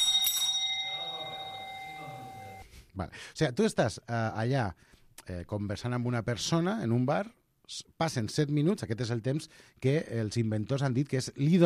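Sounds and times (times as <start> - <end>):
bell ringing to mark the end of a speed-dating round: 0.0 - 2.6
speech: 3.0 - 11.6.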